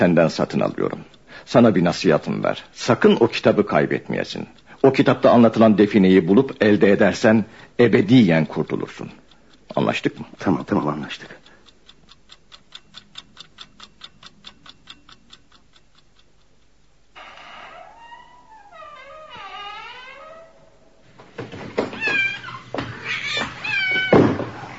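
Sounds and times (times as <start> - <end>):
speech: 0.0 - 11.4
steady clock ticking: 0.0 - 17.2
cat meowing: 21.9 - 24.4
cat giving loud harsh yowls: 22.0 - 24.2.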